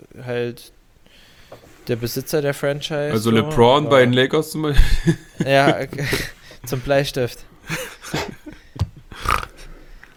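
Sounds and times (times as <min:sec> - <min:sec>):
speech: 0:00.2 - 0:00.8, 0:01.5 - 0:07.8
laughter: 0:04.8 - 0:06.9, 0:07.6 - 0:09.2
short guttural pig-like grunts: 0:09.1 - 0:09.7.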